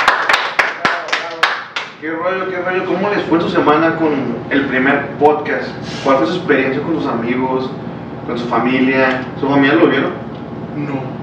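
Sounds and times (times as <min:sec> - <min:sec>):
hands clapping: 0:00.0 - 0:02.0
speech: 0:02.0 - 0:10.2, 0:10.8 - 0:11.2.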